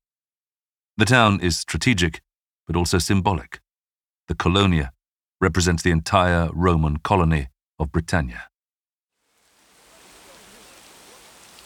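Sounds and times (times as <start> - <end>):
speech: 1.0 - 3.6, 4.3 - 8.5
steady midday rain falling on a Roman town: 9.2 - 11.6.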